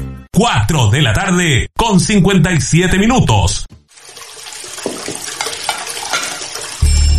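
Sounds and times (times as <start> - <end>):
speech: 0.4 - 3.8
running water splashing in a sink: 3.9 - 7.1
dishes clinking and clattering in a sink: 4.8 - 6.7.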